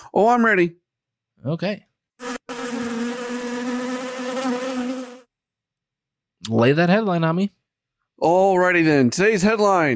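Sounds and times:
speech: 0.1s - 0.8s, 1.4s - 1.9s, 6.5s - 7.6s, 8.2s - 9.9s
loud bee buzzing: 2.2s - 5.3s.

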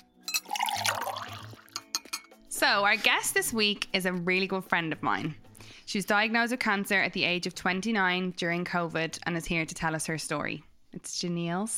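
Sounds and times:
water pouring into a vessel while making tea: 0.4s - 1.8s
speech: 2.7s - 11.7s.

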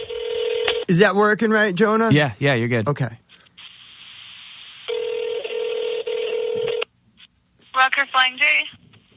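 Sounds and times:
steady telephone line tone: 0.0s - 0.8s, 4.9s - 6.9s
speech: 0.9s - 3.2s.

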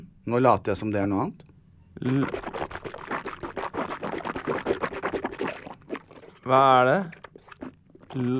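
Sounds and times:
speech: 0.3s - 2.8s, 6.5s - 7.2s, 8.1s - 8.3s
brief vocal sound: 2.0s - 2.6s
water pouring into a glass: 2.2s - 8.3s.

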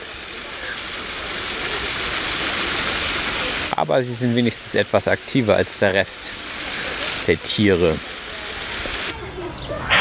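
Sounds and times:
rush of falling water: 0.0s - 10.0s
speech: 3.8s - 6.5s, 7.3s - 8.1s.

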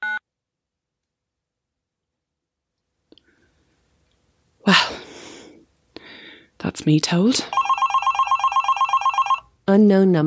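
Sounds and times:
speech: 4.7s - 5.0s, 6.7s - 7.6s, 9.7s - 10.2s
electronic phone beep signalling a call ending: 7.5s - 9.4s.

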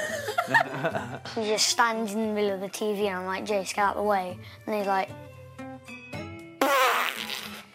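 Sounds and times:
laughter: 0.0s - 1.4s
speech: 0.5s - 5.3s
voice making a lip-trilled fart imitation: 6.6s - 7.7s.

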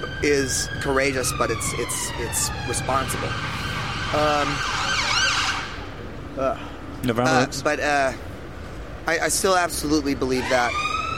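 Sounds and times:
ambulance siren wailing in rising and falling sweeps: 0.0s - 6.0s, 10.3s - 11.1s
traffic noise: 0.0s - 11.1s
speech: 0.2s - 5.1s, 6.4s - 8.3s, 9.0s - 10.9s.

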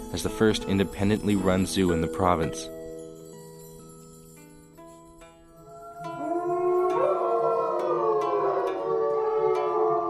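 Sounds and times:
speech: 0.1s - 2.8s
several wolves howling in chorus: 5.6s - 10.0s.

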